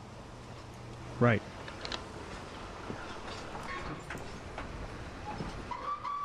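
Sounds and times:
speech: 1.2 - 1.6
passenger train rolling with rumble and rattle: 1.8 - 6.2
clacks and squeals of metal on the train track: 5.2 - 6.2.

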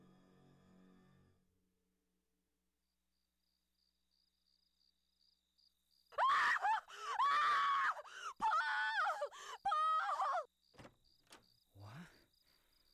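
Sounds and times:
high-pitched screams of horror in a hallway: 6.2 - 10.5.

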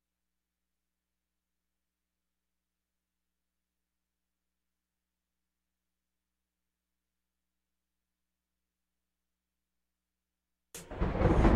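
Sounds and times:
loud thunder crack and deep rumble: 10.8 - 11.5.

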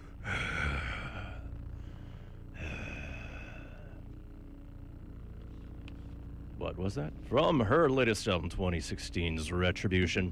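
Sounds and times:
vocalist rough rumbly throat breathing: 0.0 - 4.0
low droning rumble: 0.0 - 10.3
speech: 6.6 - 10.3.

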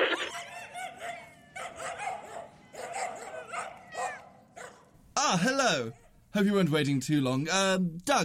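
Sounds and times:
dog barking and yipping: 0.1 - 5.0, 5.9 - 6.2
speech: 5.4 - 8.2.

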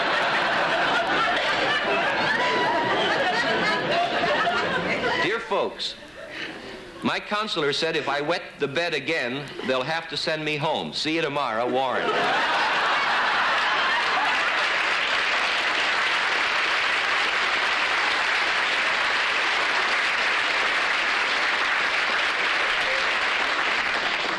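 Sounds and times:
sustained applause from a large audience: 0.0 - 4.8, 12.2 - 24.3
laughter: 0.0 - 7.2, 11.5 - 15.2
speech: 5.6 - 6.0, 7.0 - 12.6.

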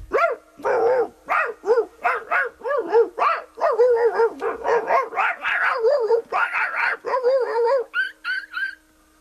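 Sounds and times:
dogs barking and yelping in a fight: 0.1 - 8.8
dog whining: 2.6 - 8.8.

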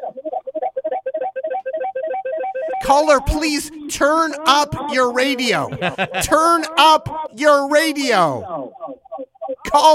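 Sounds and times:
electronic telephone ringtone for an incoming call: 0.6 - 2.9
speech: 2.8 - 8.6, 9.7 - 9.9
laughter: 4.8 - 6.8.

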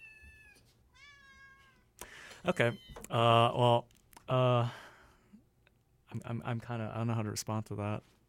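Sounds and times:
cat meowing: 0.0 - 1.9, 2.5 - 3.1
speech: 2.4 - 4.8, 6.1 - 8.2.

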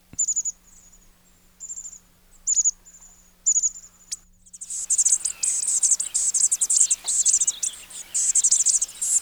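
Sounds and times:
bushtit calls: 4.6 - 9.2.

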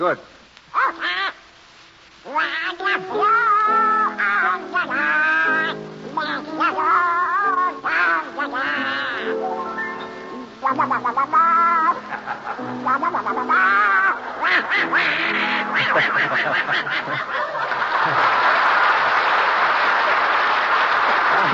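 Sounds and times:
wash of noise: 0.0 - 21.5
raspy cartoon duck voice quacking a song: 0.8 - 1.4, 2.3 - 9.4, 10.3 - 15.8
laughter: 10.9 - 21.5.

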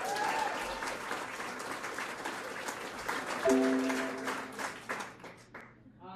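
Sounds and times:
comedy club audience whoops: 0.0 - 1.2
comedy club audience applause at the start of a stand-up set: 0.0 - 5.6.

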